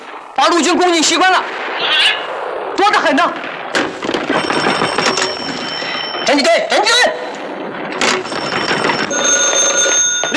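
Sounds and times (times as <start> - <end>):
speech: 0.4 - 3.5, 6.3 - 7.2
telephone ringing with a loud rattling bell: 4.2 - 6.5, 8.0 - 10.3.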